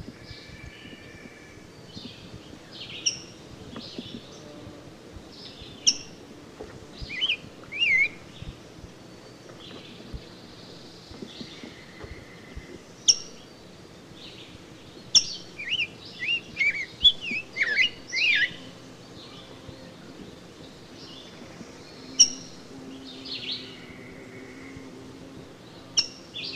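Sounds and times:
faint background hiss: 0.0s - 26.5s
rose-breasted grosbeak singing: 0.0s - 26.5s.

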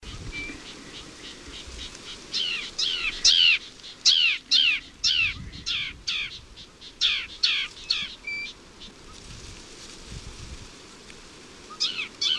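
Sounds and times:
sedge wren Cistothorus platensis giving harsh downslurred chattering notes: 0.5s - 8.6s, 11.7s - 12.3s.

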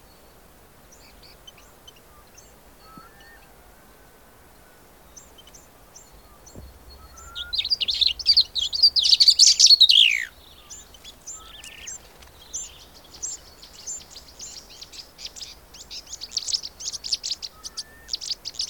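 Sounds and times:
Cape grassbird Sphenoeacus afer singing scratchy notes: 5.4s - 18.6s.

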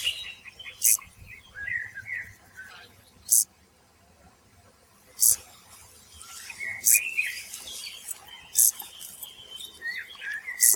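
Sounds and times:
soft bird chirps: 0.0s - 3.5s, 6.1s - 10.7s
Chorthippus brunneus common field grasshopper singing: 0.8s - 1.1s, 3.3s - 3.5s, 5.2s - 5.5s, 6.2s - 10.7s.

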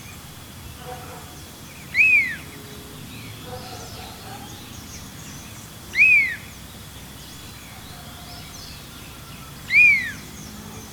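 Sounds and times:
Large Elaenia Elaenia spectabilis descending whistled calls: 9.7s - 10.2s.

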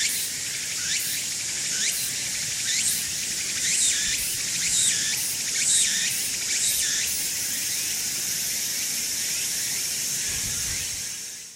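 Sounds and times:
Walker's cicada Meimuna opalifera buzzing drone: 0.0s - 11.5s.

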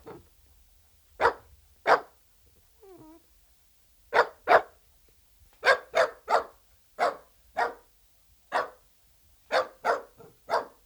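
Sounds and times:
Dachshund barking: 1.2s - 2.1s, 4.1s - 4.8s, 5.6s - 7.9s, 8.5s - 8.8s, 9.5s - 10.8s
Dachshund whine-like tonal note: 2.8s - 3.2s.

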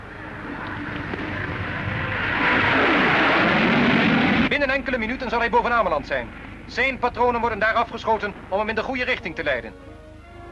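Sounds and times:
jet fighter roaring during takeoff: 0.0s - 9.6s
speech: 4.7s - 10.0s.

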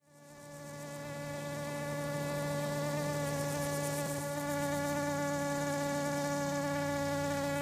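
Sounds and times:
Eristalis tenax common drone fly hovering buzz: 0.0s - 7.6s.

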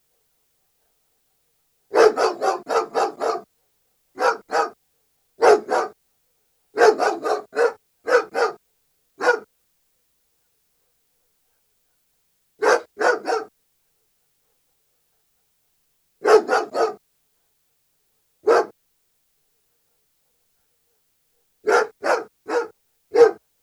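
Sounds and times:
German Shepherd barking: 1.9s - 3.5s, 4.2s - 4.8s, 5.4s - 6.0s, 6.8s - 8.6s, 9.2s - 9.5s, 12.6s - 13.5s, 16.2s - 17.0s, 18.4s - 18.8s, 21.6s - 23.4s.

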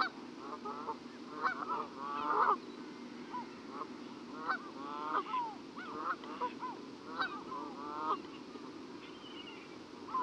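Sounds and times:
Canada geese Branta canadensis honking: 0.0s - 2.6s, 3.3s - 8.4s, 10.1s - 10.2s
steady background hiss: 0.0s - 10.2s.

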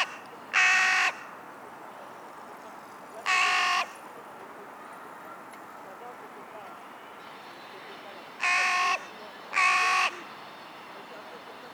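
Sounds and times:
Carrion crow (Corvus corone) giving hoarse flat caws: 0.0s - 1.4s, 3.2s - 4.0s, 8.4s - 10.3s.

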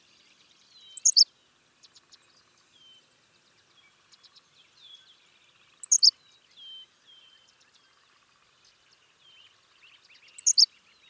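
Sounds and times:
Henslow's sparrow Ammodramus henslowii song: 0.0s - 11.0s
soft scattered chirps: 0.9s - 1.3s, 5.8s - 6.1s, 10.3s - 10.7s.

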